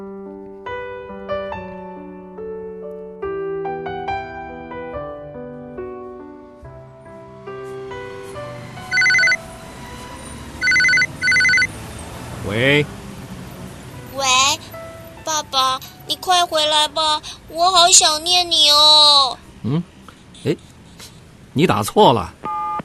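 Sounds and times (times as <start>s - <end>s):
soft melodic music: 0.0s - 18.6s
loud electronic telephone ring: 8.9s - 9.4s, 10.6s - 11.7s
speech: 12.6s - 13.0s, 16.2s - 20.6s, 21.6s - 22.4s.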